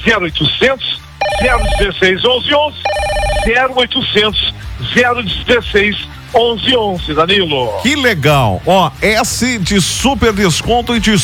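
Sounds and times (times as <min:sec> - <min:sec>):
speech: 0:00.0 - 0:11.2
telephone ringing with incoming call: 0:01.0 - 0:04.5.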